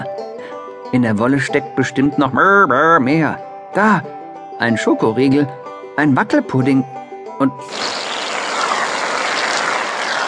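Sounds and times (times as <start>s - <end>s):
speech: 0.9s - 7.9s
whipped cream spray can hissing: 7.6s - 10.2s.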